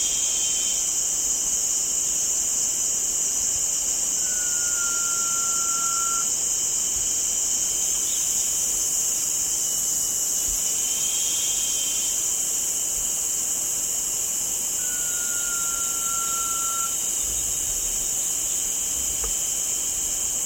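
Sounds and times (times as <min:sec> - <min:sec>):
high insect chorus: 0:00.0 - 0:20.4
Blue-banded pitta whistle: 0:04.2 - 0:06.3, 0:14.8 - 0:17.0.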